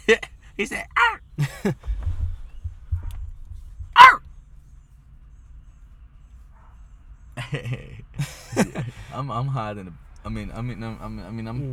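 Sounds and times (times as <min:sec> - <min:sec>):
laughter: 0:00.0 - 0:02.1, 0:07.4 - 0:09.3
low rumble: 0:00.0 - 0:11.7
speech: 0:00.1 - 0:01.8, 0:09.4 - 0:11.7
dog barking and whimpering: 0:02.9 - 0:04.3, 0:06.5 - 0:07.0.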